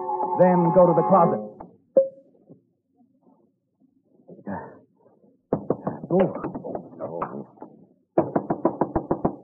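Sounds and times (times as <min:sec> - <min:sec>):
speech: 0:00.4 - 0:01.8, 0:06.1 - 0:06.6
knocking on a locked dressing-room door: 0:05.5 - 0:07.0, 0:08.2 - 0:09.4.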